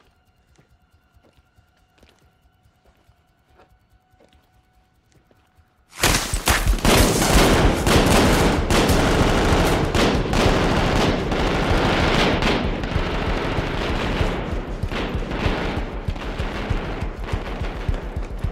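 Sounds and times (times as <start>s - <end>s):
gunfire hitting an overturned boat: 5.9s - 18.3s.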